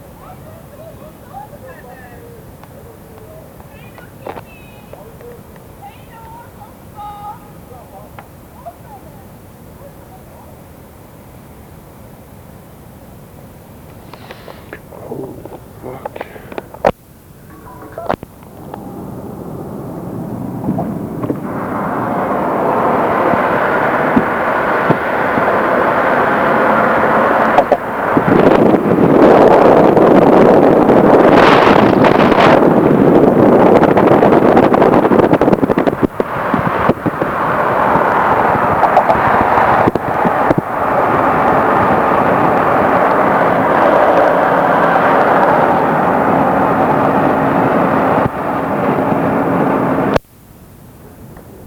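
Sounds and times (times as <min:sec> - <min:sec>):
rocket fuel burning: 0:13.6 - 0:17.0, 0:18.0 - 0:50.2.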